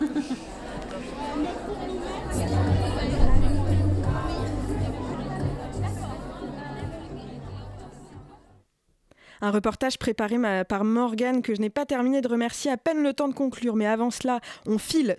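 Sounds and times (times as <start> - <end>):
murmur of many voices from a festival crowd of over 600 visitors in the rain: 0.0 - 8.7
low hum: 2.2 - 5.2
speech: 9.4 - 15.1.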